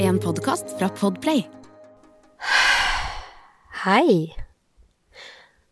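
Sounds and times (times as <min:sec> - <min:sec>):
speech: 0:00.2 - 0:01.6, 0:03.9 - 0:04.5
long deep belly breath: 0:02.4 - 0:03.7, 0:05.1 - 0:05.7.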